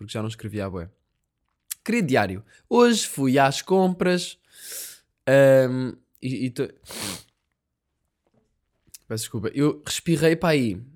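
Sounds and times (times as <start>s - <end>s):
speech: 0.0s - 1.0s, 1.8s - 7.2s, 9.1s - 10.9s
sneeze: 6.9s - 7.3s.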